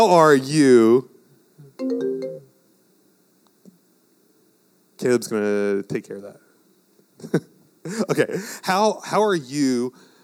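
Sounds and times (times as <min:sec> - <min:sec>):
speech: 0:00.0 - 0:01.1, 0:01.8 - 0:02.1, 0:05.0 - 0:06.4, 0:07.2 - 0:10.1
melodic phone ringtone through projector speakers: 0:01.8 - 0:02.5.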